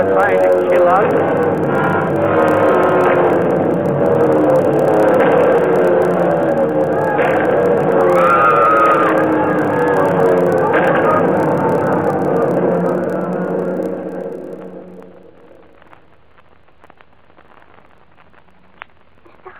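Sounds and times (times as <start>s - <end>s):
speech: 0.0s - 2.3s
warplane engines roaring while diving low over a road: 0.0s - 15.2s.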